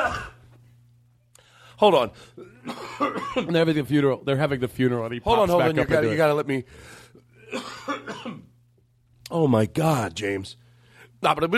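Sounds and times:
harsh coughs: 0.0s - 0.5s, 2.3s - 3.6s, 7.4s - 8.6s
faint steady hum: 0.0s - 11.5s
speech: 1.8s - 8.5s, 9.3s - 10.6s, 11.2s - 11.5s.

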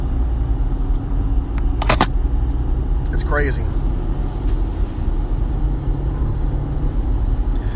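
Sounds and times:
car engine rumble inside a moving car in slow traffic: 0.0s - 7.7s
car interior click and squeak: 1.8s - 2.1s
speech: 3.3s - 3.9s.

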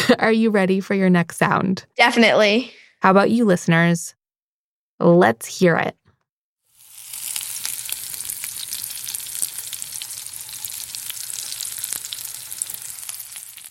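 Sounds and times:
speech: 0.1s - 4.2s, 5.0s - 6.0s
food sizzling and frying in a pan: 6.7s - 13.7s.

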